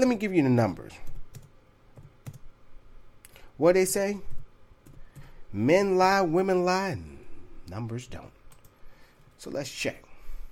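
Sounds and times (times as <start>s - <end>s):
speech: 0.0s - 1.1s, 3.6s - 4.3s, 5.5s - 8.4s, 9.4s - 10.0s
faint hum: 0.0s - 10.4s
soft keystrokes on a computer keyboard: 1.0s - 2.4s, 4.8s - 5.3s.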